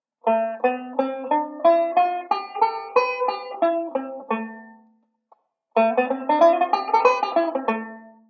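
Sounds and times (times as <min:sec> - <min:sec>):
banjo playing a modal sequence: 0:00.2 - 0:05.0, 0:05.7 - 0:08.2.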